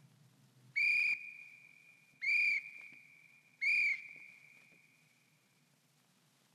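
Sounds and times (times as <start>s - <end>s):
short shrill whistle blasts: 0.8s - 4.5s.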